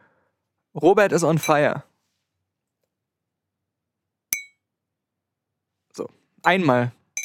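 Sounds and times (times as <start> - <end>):
speech: 0.8 - 1.9, 6.0 - 7.0
stirring stick clinking on a large ceramic mug: 4.4 - 4.6.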